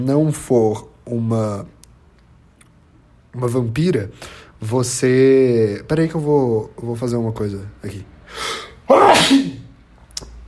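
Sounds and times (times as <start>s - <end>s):
speech: 0.0s - 1.8s, 3.4s - 9.6s
person sneezing: 8.4s - 9.7s.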